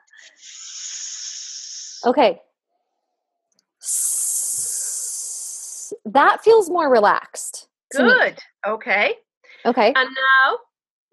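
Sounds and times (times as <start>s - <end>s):
person hissing like a snake: 0.0s - 2.1s, 3.8s - 6.0s
speech: 2.0s - 2.5s, 6.1s - 10.7s.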